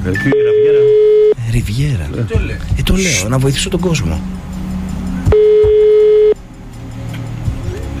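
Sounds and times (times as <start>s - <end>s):
speech: 0.0s - 0.4s, 1.5s - 4.5s
telephone ringback tone: 0.3s - 1.4s, 5.4s - 6.4s.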